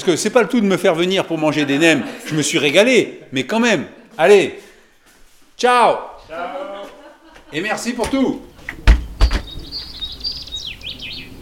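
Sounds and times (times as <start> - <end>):
speech: 0.0 - 4.6, 5.6 - 6.6, 7.5 - 8.8
laughter: 0.1 - 4.7, 6.2 - 8.4
sharp knocks: 8.0 - 9.7
common chaffinch singing: 8.4 - 11.4.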